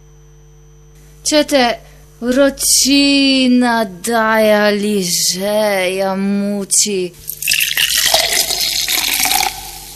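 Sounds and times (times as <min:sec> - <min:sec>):
speech: 0:01.3 - 0:07.4
cold fizzy drink being poured, hissing and bubbling: 0:07.3 - 0:09.9.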